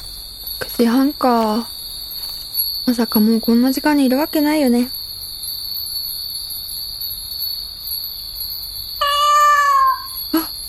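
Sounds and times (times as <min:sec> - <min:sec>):
crickets chirring at night: 0:00.0 - 0:10.6
speech: 0:00.6 - 0:01.8, 0:02.8 - 0:05.0
cat meowing: 0:09.0 - 0:10.2.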